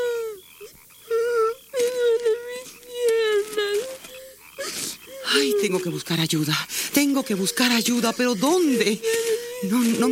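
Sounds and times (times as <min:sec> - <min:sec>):
young prince crying in pain after breaking both legs: 0:01.1 - 0:06.0, 0:07.0 - 0:10.0
speech: 0:05.6 - 0:10.0.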